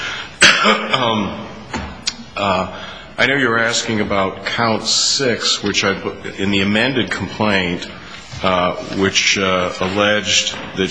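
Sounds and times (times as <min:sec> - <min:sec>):
person coughing with a voiced rasp: 0:00.4 - 0:01.2
speech: 0:00.6 - 0:01.5, 0:02.4 - 0:10.8.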